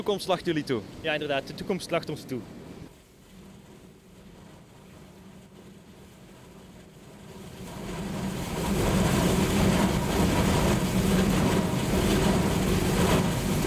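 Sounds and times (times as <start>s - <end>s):
speech: 0.0s - 2.6s
industrial shredder drive motor running: 5.9s - 13.6s.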